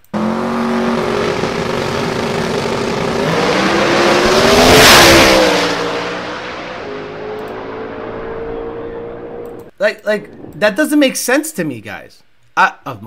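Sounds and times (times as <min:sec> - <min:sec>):
twin-turbo inline-engine drag car roaring on a quarter-mile run: 0:00.0 - 0:09.7
speech: 0:09.8 - 0:13.0.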